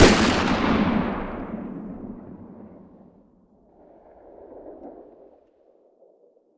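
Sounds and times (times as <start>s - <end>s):
distant pistol shot outdoors: 0.0s - 2.9s.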